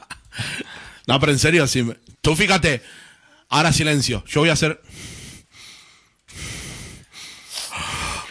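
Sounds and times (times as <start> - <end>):
heavy breathing against a microphone: 0.3 - 1.1, 2.8 - 3.5, 4.8 - 8.2
speech: 1.1 - 5.1.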